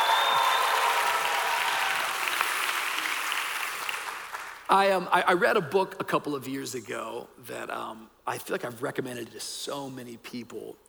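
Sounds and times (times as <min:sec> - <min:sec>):
high voices cheering: 0:00.0 - 0:03.4
church congregation applauding and cheering during a service: 0:00.0 - 0:04.7
speech: 0:04.7 - 0:10.8.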